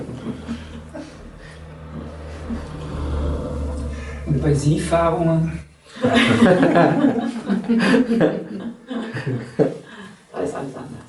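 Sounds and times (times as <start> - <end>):
laughter: 0.0 - 2.7, 5.9 - 9.9
car engine rumble with revving while driving off: 0.0 - 5.8
speech: 4.3 - 8.6, 9.2 - 9.8.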